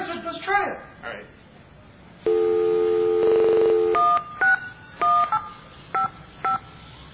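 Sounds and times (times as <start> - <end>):
speech: 0.1 - 1.5
payphone dial tone: 2.3 - 4.1
payphone touch-tone beeps from dialing a number: 2.3 - 6.7.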